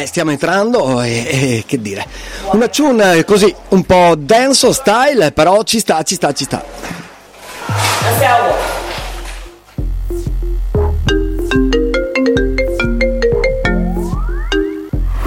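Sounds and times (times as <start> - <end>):
speech: 0.1 - 7.1, 7.7 - 8.8
electronic phone ringtone melody with pulsing bass line: 10.8 - 15.1.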